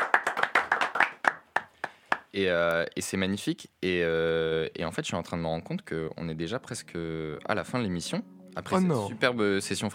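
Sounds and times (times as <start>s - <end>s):
hand claps thanking the beatmaker after a rap freestyle session: 0.0s - 2.3s
speech: 2.3s - 9.9s.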